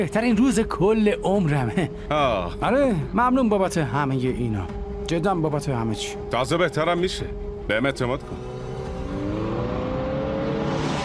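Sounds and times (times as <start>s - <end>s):
speech: 0.0s - 8.5s
car engine running: 7.5s - 11.0s.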